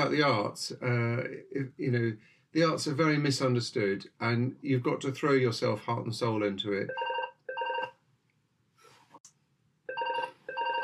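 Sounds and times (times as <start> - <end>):
speech: 0.0 - 7.1
telephone ringing: 6.9 - 7.9, 9.9 - 10.8.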